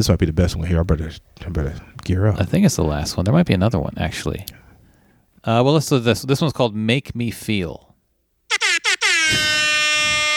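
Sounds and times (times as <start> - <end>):
speech: 0.0 - 4.6, 5.4 - 7.9
air horn blasts: 8.5 - 10.3.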